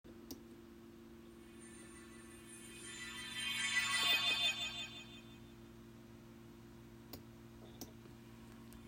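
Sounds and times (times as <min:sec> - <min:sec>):
elf twinkle effect: 0:01.4 - 0:05.7.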